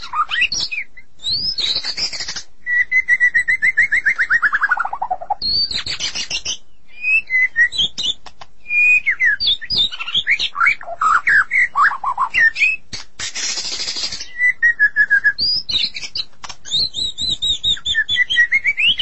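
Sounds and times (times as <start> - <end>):
magpie-robins and shamas singing whistled phrases: 0.0 - 19.0
harsh rasping burst: 13.0 - 14.3.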